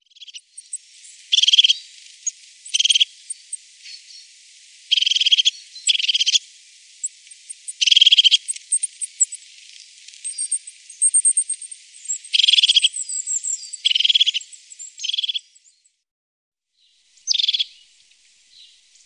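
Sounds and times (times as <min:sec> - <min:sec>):
crested tit giving short buzzy rolling trills: 0:00.1 - 0:01.8, 0:02.7 - 0:03.6, 0:04.9 - 0:06.4, 0:07.4 - 0:09.4, 0:10.2 - 0:15.7, 0:17.2 - 0:17.9.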